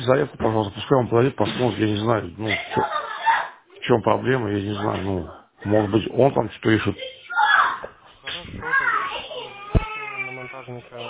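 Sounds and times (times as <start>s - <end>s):
speech: 0.0s - 3.0s, 3.9s - 7.1s, 10.7s - 11.0s
child sharp cry with wailing: 8.6s - 11.0s.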